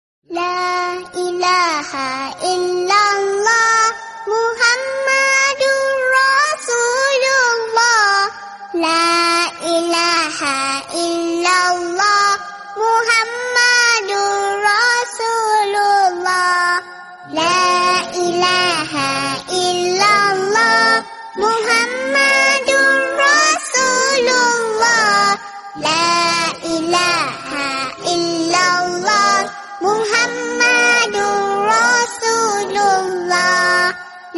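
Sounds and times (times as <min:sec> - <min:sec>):
baby voice singing Islamic naat: 0:00.3 - 0:34.3.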